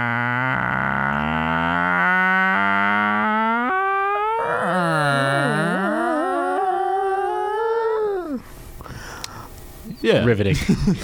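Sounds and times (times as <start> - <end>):
person's voice imitating a creaky door: 0.0 - 8.4
speech: 10.1 - 11.0
laughter: 10.4 - 11.0.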